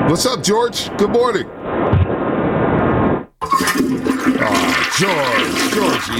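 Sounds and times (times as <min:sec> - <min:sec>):
speech: 0:00.1 - 0:02.1, 0:05.0 - 0:06.1
toilet flushing: 0:03.4 - 0:06.1.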